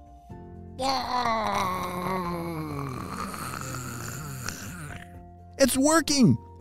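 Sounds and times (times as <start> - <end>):
speech: 0.8 - 2.2, 5.6 - 6.4
voice imitating a gummy bear dissolving with a long wavering groan: 0.8 - 5.2.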